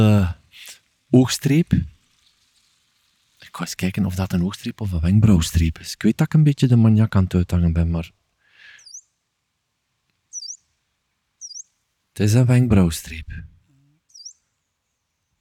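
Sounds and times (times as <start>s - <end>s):
speech: 0.0s - 0.4s, 1.1s - 1.9s, 3.5s - 8.2s, 12.2s - 13.5s
leaf warbler Phylloscopus calling: 8.7s - 9.1s, 10.3s - 10.7s, 11.4s - 11.8s, 14.1s - 14.5s.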